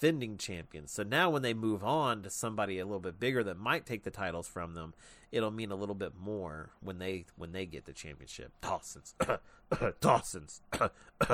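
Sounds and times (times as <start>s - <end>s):
speech: 0.0s - 11.3s
coughing: 9.2s - 11.3s
throat clearing: 9.2s - 11.3s.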